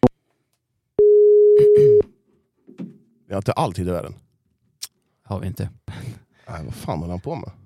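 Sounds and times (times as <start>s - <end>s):
telephone busy tone: 1.0s - 2.0s
speech: 3.3s - 4.2s, 5.3s - 7.6s.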